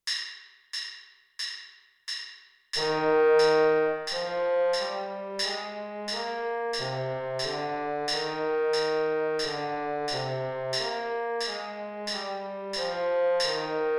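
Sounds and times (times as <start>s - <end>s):
baritone trombone playing an E flat major scale: 2.8s - 13.9s.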